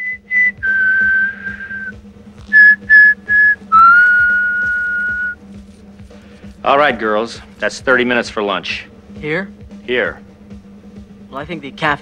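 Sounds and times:
person whistling a melody: 0:00.0 - 0:05.4
speech: 0:06.6 - 0:10.2, 0:11.4 - 0:12.0.

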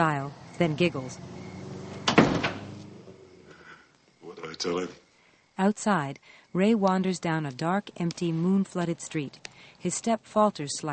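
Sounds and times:
speech: 0:00.0 - 0:01.4, 0:04.6 - 0:05.0, 0:05.6 - 0:10.9
wooden door opening and shutting with latch rattle: 0:01.2 - 0:03.2.

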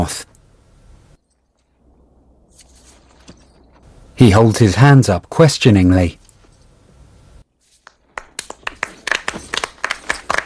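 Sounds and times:
speech: 0:00.0 - 0:00.3, 0:04.2 - 0:06.2
watching crowd applauding: 0:08.1 - 0:10.4.

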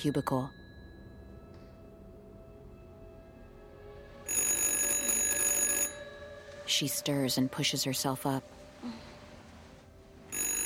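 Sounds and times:
speech: 0:00.0 - 0:00.6, 0:06.7 - 0:09.1
telephone ringing: 0:04.2 - 0:06.6, 0:10.3 - 0:10.6.

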